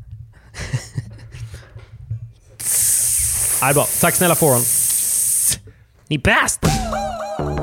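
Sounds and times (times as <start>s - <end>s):
laughter: 0.6s - 1.7s
spray bottle spritzing: 2.6s - 5.6s
speech: 3.6s - 4.8s, 6.1s - 7.5s.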